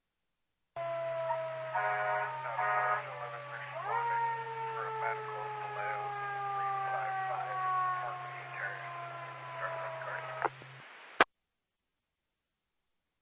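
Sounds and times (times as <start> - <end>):
faint voice over dispatch radio: 0.8 - 10.7
emergency vehicle siren droning: 0.8 - 11.2
steady low hum: 0.8 - 11.2
crackly emergency dispatch radio transmission: 0.8 - 11.3.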